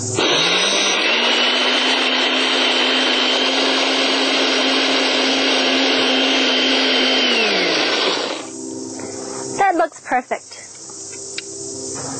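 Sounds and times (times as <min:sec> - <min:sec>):
blender grinding almonds into flour: 0:00.2 - 0:08.6
speech: 0:10.2 - 0:10.5.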